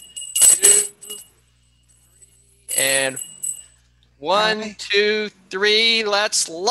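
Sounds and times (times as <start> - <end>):
small hand bell ringing: 0.0 - 1.3, 2.7 - 3.7
speech: 4.2 - 6.6.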